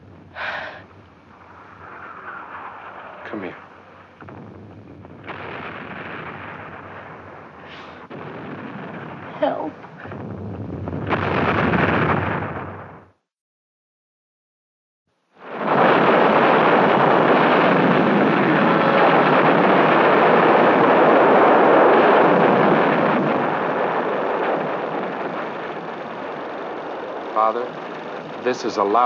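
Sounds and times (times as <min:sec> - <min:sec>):
heavy artillery shelling explosions: 0:00.0 - 0:13.2, 0:15.4 - 0:29.0
speech: 0:03.3 - 0:03.6, 0:28.5 - 0:29.0.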